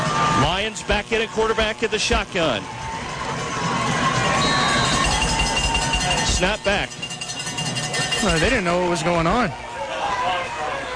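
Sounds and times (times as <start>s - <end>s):
football stadium crowd cheering: 0.0s - 10.9s
speech: 0.8s - 3.0s, 6.4s - 7.0s, 8.2s - 9.7s
whistles: 4.3s - 5.3s.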